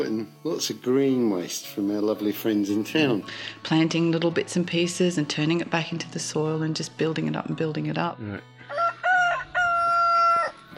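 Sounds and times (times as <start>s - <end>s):
speech: 0.0s - 8.5s
rooster crowing in a farm chicken run: 8.6s - 10.7s.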